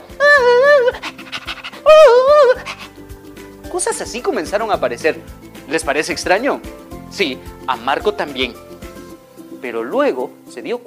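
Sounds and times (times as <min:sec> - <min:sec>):
dog long wavering whine: 0:00.1 - 0:03.0
speech: 0:00.9 - 0:01.2, 0:03.8 - 0:08.7, 0:09.6 - 0:10.8
dog panting in quick rhythmic breaths: 0:00.9 - 0:03.0.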